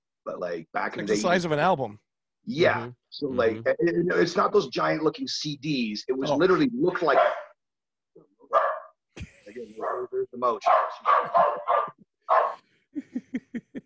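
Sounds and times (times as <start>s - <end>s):
speech: 0.2s - 7.4s, 9.6s - 11.9s
dog barking at birds: 7.0s - 7.6s, 8.5s - 9.0s, 9.8s - 12.6s
people laughing: 13.0s - 13.8s.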